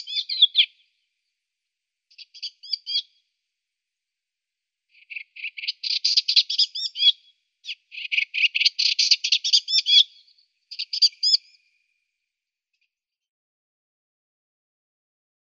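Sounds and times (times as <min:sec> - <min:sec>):
Eastern Olivaceous Warbler giving rapid dry chattering notes and squeaky twanging slurs: 0:00.0 - 0:00.7, 0:02.1 - 0:03.0, 0:05.0 - 0:10.1, 0:10.7 - 0:11.6.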